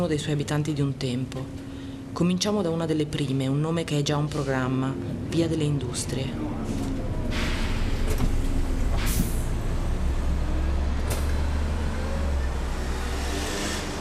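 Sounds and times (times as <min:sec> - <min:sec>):
speech: 0:00.0 - 0:07.4
city bus idling with a steady low rumble: 0:00.0 - 0:13.0
city bus air brakes hissing: 0:07.2 - 0:08.2, 0:08.9 - 0:09.6.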